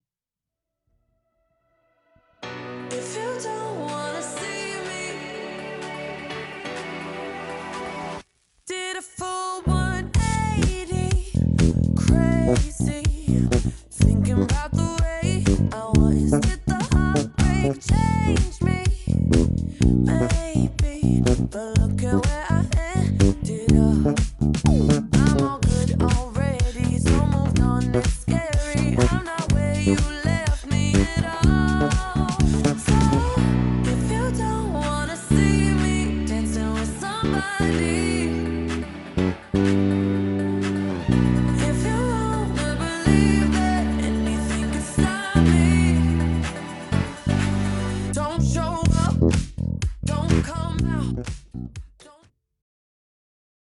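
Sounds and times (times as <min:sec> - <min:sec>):
Ernie Ball Music Man Sterling bass guitar: 0:09.6 - 0:51.8.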